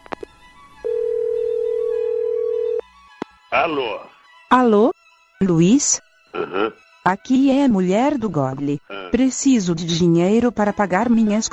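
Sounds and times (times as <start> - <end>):
telephone line ringing tone after dialing: 0.8 - 2.8
speech: 3.6 - 11.5.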